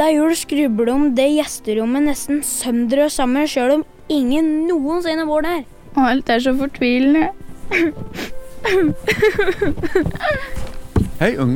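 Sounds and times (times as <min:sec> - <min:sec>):
speech: 0:00.0 - 0:11.5
person crying with loud shaky sobs and whimpering: 0:07.7 - 0:10.7.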